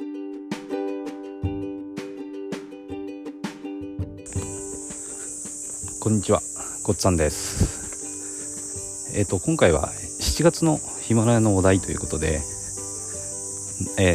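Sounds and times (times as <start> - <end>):
cicadas buzzing outdoors: 4.3 - 14.1
speech: 6.0 - 7.8, 9.2 - 12.5, 13.8 - 14.1.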